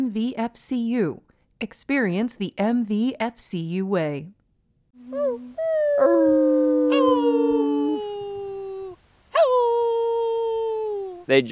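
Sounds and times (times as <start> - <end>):
speech: 0.1 - 4.4, 5.1 - 7.5, 11.3 - 11.5
dogs howling together: 5.1 - 11.2.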